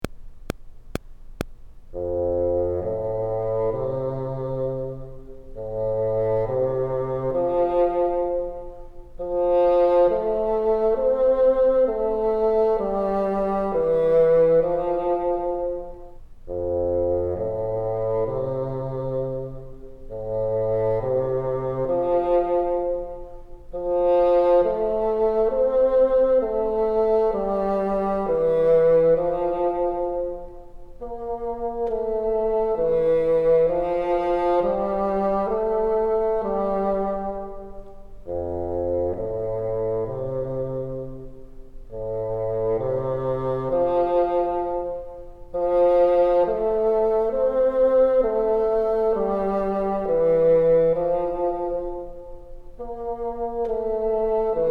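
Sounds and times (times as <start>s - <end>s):
bassoon: 1.9s - 54.6s.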